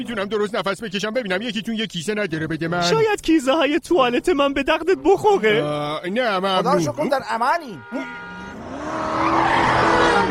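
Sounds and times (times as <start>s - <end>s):
speech: 0.0s - 8.2s
car tires squealing and skidding on a road: 7.9s - 10.2s
car driving hard along a road with a rising engine whine: 8.0s - 10.2s.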